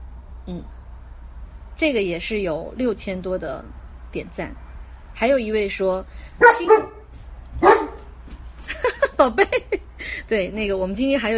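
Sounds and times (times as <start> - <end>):
speech: 0.5 - 0.8, 1.8 - 4.6, 5.2 - 7.0, 9.2 - 11.3
dog barking: 6.4 - 8.1
laughter: 8.6 - 10.2.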